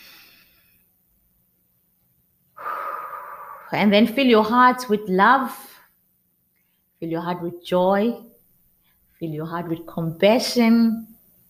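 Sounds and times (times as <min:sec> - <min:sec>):
deep breathing during a guided relaxation: 0:02.6 - 0:03.9
speech: 0:03.7 - 0:05.8, 0:07.0 - 0:08.3, 0:09.2 - 0:11.1.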